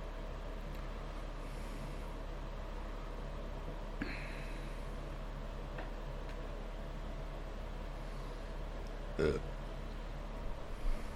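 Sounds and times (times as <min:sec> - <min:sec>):
steady hum: 0:00.0 - 0:11.1
low rumbling burp imitating a song: 0:09.2 - 0:09.5.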